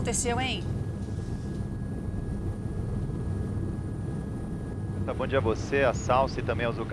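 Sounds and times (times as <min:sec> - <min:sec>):
speech: 0:00.0 - 0:00.8, 0:05.1 - 0:06.9
news helicopter engine and rotor roar over Avenida Radial Leste in São Paulo: 0:00.0 - 0:06.9.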